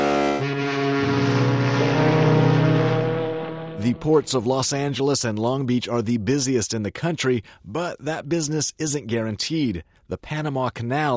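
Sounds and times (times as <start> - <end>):
cargo ship horn blasting: 0.0 - 4.4
speech: 3.9 - 11.1.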